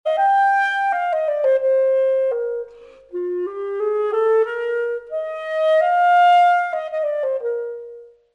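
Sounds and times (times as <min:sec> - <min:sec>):
clarinet: 0:00.1 - 0:08.3.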